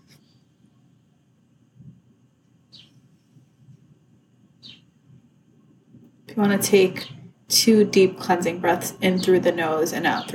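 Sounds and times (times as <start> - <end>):
outdoor wind: 0.0 - 10.3
birds chirping: 2.7 - 3.0, 4.6 - 4.9, 6.3 - 10.3
traffic rumble: 6.0 - 10.3
speech: 6.4 - 10.3.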